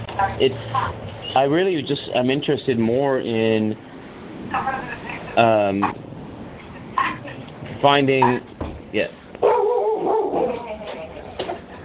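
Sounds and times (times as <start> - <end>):
speech: 0.2 - 3.9, 4.5 - 6.0, 7.0 - 9.2
two dogs barking, yipping and growling while scrapping: 9.4 - 10.8.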